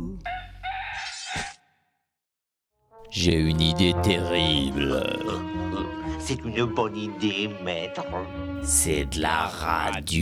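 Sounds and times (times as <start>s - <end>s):
rooster crowing: 0.3s - 1.1s
speech: 3.1s - 10.2s.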